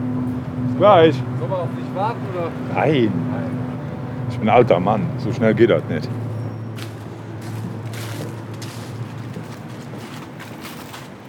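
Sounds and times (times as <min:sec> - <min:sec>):
steady low mechanical rumble: 0:00.0 - 0:11.2
speech: 0:00.8 - 0:03.6, 0:04.3 - 0:06.3
man's brisk footsteps walking up a boat landing stage: 0:06.8 - 0:11.2.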